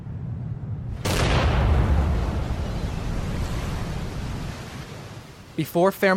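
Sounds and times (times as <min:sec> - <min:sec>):
explosion roar: 0:00.0 - 0:04.6
low rumble: 0:00.0 - 0:05.2
speech: 0:05.6 - 0:06.1.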